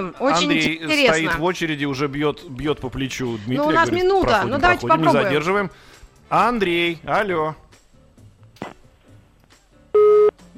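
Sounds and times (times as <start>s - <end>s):
speech: 0.0s - 7.6s
busy-signal beep of a dropped phone call on a radio call-in line: 10.0s - 10.3s.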